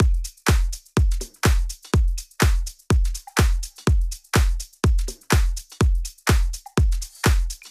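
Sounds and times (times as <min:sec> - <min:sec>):
clean drums: 0:00.0 - 0:07.6.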